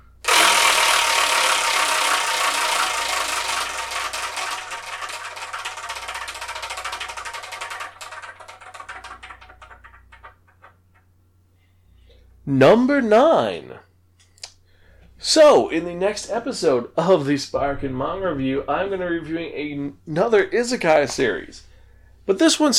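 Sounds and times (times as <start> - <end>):
spinning prize wheel ticking: 0.0 - 10.7
speech: 12.5 - 13.8, 15.3 - 21.7, 22.3 - 22.7.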